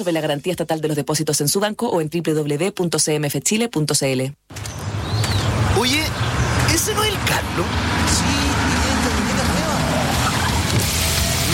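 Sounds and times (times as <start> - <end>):
speech: 0.0 - 4.8, 5.8 - 8.8
engine and road roar from a new pickup with a 2.5-litre turbodiesel engine: 4.5 - 11.5.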